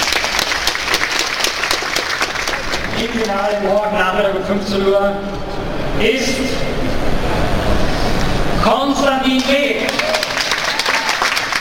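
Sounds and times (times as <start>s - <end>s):
studio audience applause for game contestants: 0.0s - 3.7s, 9.4s - 11.5s
speech: 3.0s - 7.4s, 8.6s - 10.2s.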